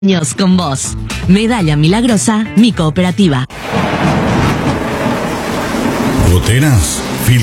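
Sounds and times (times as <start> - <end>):
speech: 0.0 - 3.8, 6.4 - 7.4
steady rain: 3.6 - 7.4.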